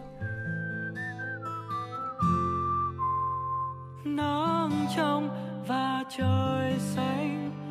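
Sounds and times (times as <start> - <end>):
whistled melody: 0.0 - 5.2
speech: 4.9 - 7.4.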